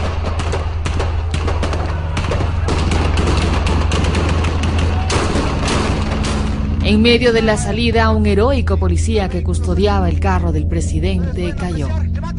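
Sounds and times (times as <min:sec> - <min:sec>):
sniper gunfire from rooftop terraces shooting at a car: 0:00.0 - 0:06.8
loud continuous rumble: 0:00.0 - 0:12.3
steady low hum: 0:00.0 - 0:12.3
speech: 0:06.9 - 0:12.2.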